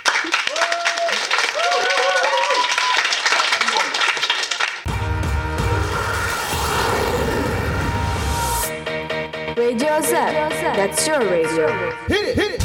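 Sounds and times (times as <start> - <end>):
loud audience applause: 0.0 - 4.9
audience cheers and whistles: 0.5 - 3.3
humming sound: 5.0 - 8.7
speech: 9.8 - 12.6.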